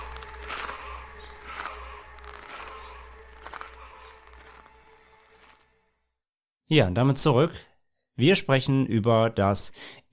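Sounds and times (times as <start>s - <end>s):
slow heavy footsteps: 0.0s - 5.8s
low droning hum: 0.0s - 6.0s
speech: 6.7s - 10.1s.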